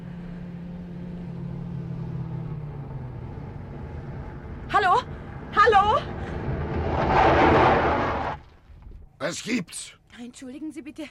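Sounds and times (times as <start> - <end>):
car approaching on the road: 0.0 - 9.2
speech: 9.3 - 11.0.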